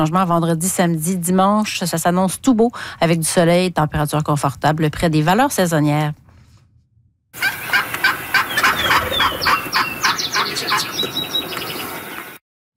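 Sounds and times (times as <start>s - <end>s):
speech: 0.0s - 6.2s
female wild turkey yelping: 7.4s - 11.0s.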